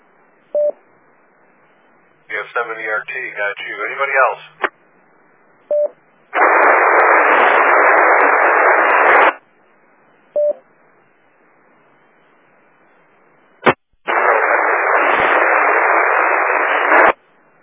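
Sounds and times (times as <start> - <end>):
short faint beeps: 0.5 - 0.8, 5.6 - 6.0, 10.1 - 13.6
loud radio static on an amateur radio repeater: 2.2 - 4.8, 6.3 - 9.4, 13.6 - 17.2
speech: 2.6 - 4.6.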